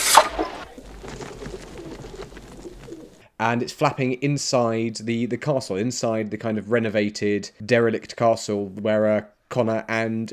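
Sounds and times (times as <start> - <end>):
brief burst of noise: 0.0 - 1.5
pigeon cooing: 0.0 - 3.2
faint ambient hiss: 0.0 - 10.3
speech: 3.4 - 10.3.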